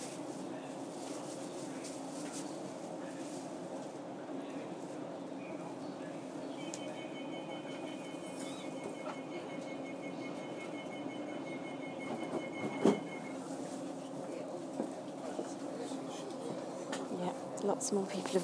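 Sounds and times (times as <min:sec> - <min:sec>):
faint murmur: 0:00.0 - 0:18.4
train rumbling heard from inside a carriage: 0:00.0 - 0:18.4
thin high train wheel squeal: 0:06.6 - 0:13.4
speech: 0:17.7 - 0:18.4.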